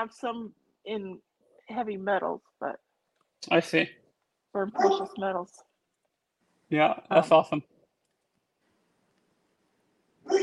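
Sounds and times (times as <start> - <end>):
speech: 0.0 - 2.8, 3.4 - 5.7, 6.7 - 7.7
single short dog bark: 4.8 - 5.2, 10.2 - 10.4.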